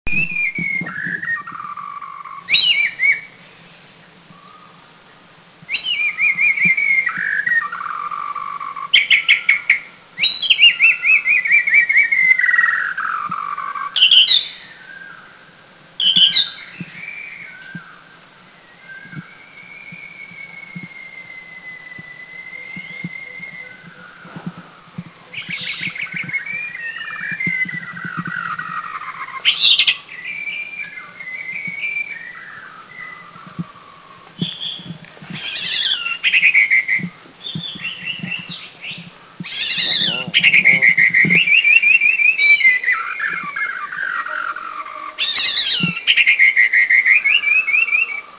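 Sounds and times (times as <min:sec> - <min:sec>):
White-browed Shama singing in the Philippines: 0:00.0 - 0:48.3.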